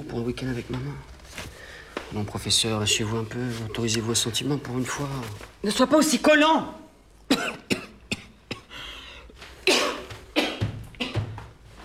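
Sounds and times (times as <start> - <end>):
speech: 0.1 - 7.5
man coughing: 7.3 - 8.8, 9.6 - 11.4.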